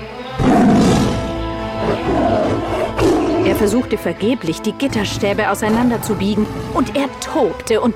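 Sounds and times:
tiger roaring: 0.3 - 3.9
speech: 3.6 - 7.9.

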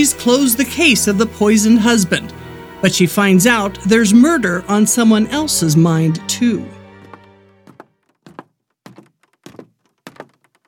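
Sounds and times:
speech: 0.0 - 6.8
light footsteps climbing wooden stairs toward an office door: 6.6 - 10.6.

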